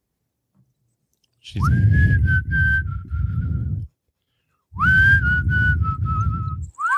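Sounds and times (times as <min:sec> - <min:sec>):
speech: 0:01.4 - 0:02.8
person whistling tunelessly: 0:01.6 - 0:03.9, 0:04.8 - 0:06.9.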